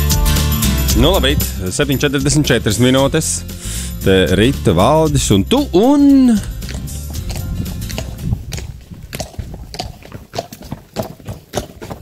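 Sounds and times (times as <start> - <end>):
low rumbling background: 0.7 - 10.0
speech: 1.0 - 6.5
horse hooves clip-clopping at a walking pace: 4.5 - 12.0.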